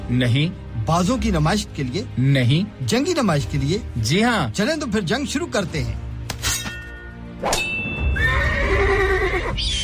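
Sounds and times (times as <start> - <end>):
speech: 0.1 - 6.0
horse neighing at a horse display at a museum in Leeds: 8.1 - 9.7.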